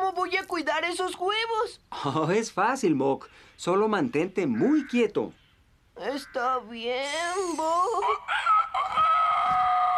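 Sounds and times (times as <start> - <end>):
speech: 0.2 - 5.4, 6.0 - 9.1
rooster crowing on a farm: 8.3 - 9.9.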